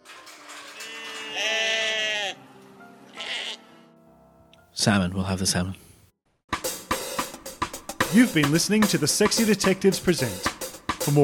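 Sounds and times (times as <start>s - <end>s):
lamb bleating in a restaurant: 0.8s - 2.4s, 3.1s - 3.8s
speech: 4.8s - 5.9s, 8.2s - 11.2s.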